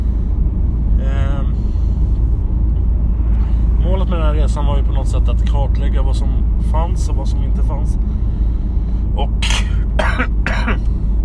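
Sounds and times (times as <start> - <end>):
steady low hum: 0.0 - 11.2
speech: 4.4 - 8.3, 9.2 - 9.6, 10.2 - 10.9
person coughing: 9.4 - 10.9
throat clearing: 9.4 - 10.9.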